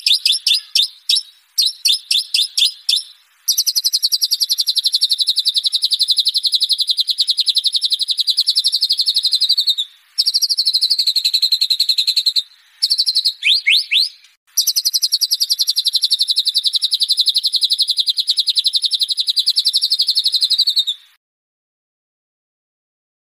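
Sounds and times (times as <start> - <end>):
white-rumped shama song with trills and swept whistles: 0.0 - 21.2.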